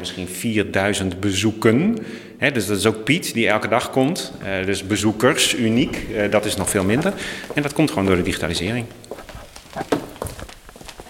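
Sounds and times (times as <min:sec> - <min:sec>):
speech: 0:00.0 - 0:09.2
faint room murmur: 0:04.2 - 0:10.1
footsteps walking indoors toward an office: 0:04.2 - 0:11.0.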